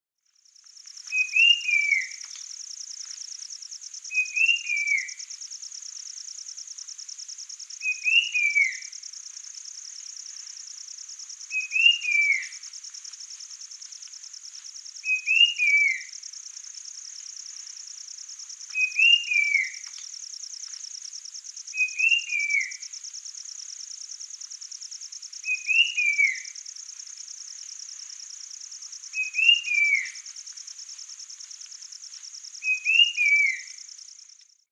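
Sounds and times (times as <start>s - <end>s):
Brown capped Babbler calling: 1.0s - 2.4s, 4.1s - 5.3s, 7.8s - 9.0s, 11.4s - 12.7s, 15.0s - 16.2s, 18.7s - 20.0s, 21.7s - 22.9s, 25.4s - 26.7s, 29.0s - 30.3s, 32.6s - 33.9s.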